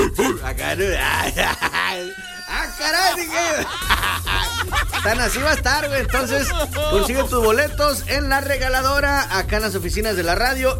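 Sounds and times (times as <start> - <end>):
person imitating a dog barking with yelps and howling whines: 0.0 - 2.5, 6.3 - 7.1
laughter: 0.0 - 8.1
speech: 0.7 - 1.6, 2.8 - 4.3, 5.0 - 10.7.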